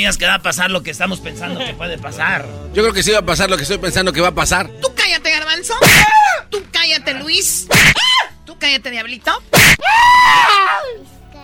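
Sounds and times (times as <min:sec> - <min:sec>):
speech: 0:00.0 - 0:11.1
person screaming: 0:05.8 - 0:06.5, 0:07.7 - 0:08.3, 0:09.6 - 0:11.0.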